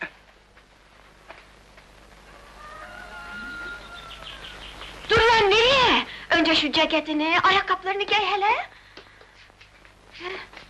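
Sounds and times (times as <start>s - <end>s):
quiet outdoor hiss: 0.0s - 10.6s
rooster crowing: 2.2s - 4.7s
speech: 6.5s - 8.8s.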